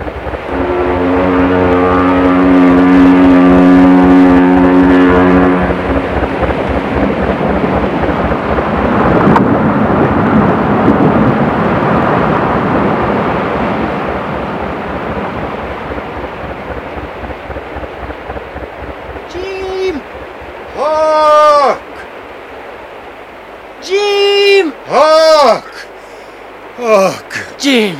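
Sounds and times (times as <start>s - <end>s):
paddle steamboat engine noise: 0.0s - 27.9s
paddle steamboat heavy churning rumble: 0.0s - 27.9s
roaring wash of thrashing water from a paddle steamboat: 0.0s - 27.9s
paddle steamboat deep droning whistle blast: 0.5s - 5.9s.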